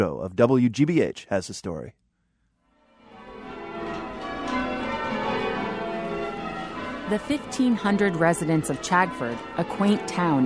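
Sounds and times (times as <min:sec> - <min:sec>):
speech: 0:00.0 - 0:02.0, 0:07.1 - 0:10.4
church bells ringing in Chagford, Devon, southwest England: 0:03.1 - 0:10.4.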